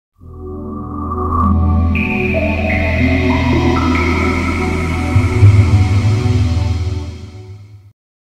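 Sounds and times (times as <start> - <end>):
game console startup jingle: 2.0 - 7.4.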